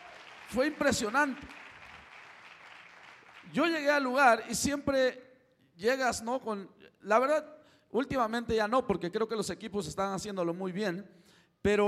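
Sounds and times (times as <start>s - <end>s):
crowd clapping: 0.0s - 4.0s
speech: 0.5s - 1.6s, 3.5s - 11.8s.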